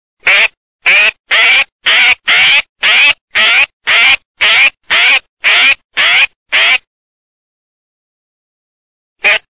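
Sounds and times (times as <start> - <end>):
Eurasian jay calling in a forest: 0.2 - 6.9.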